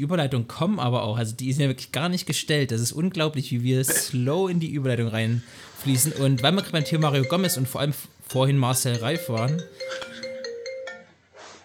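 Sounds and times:
speech: 0.0s - 10.1s
phone ringing with a bright electronic melody: 5.8s - 7.9s, 8.8s - 11.2s.

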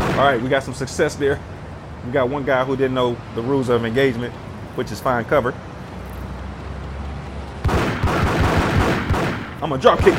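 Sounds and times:
gunfire in a video game: 0.0s - 0.5s, 7.6s - 10.1s
speech: 0.2s - 5.7s, 9.6s - 10.1s.

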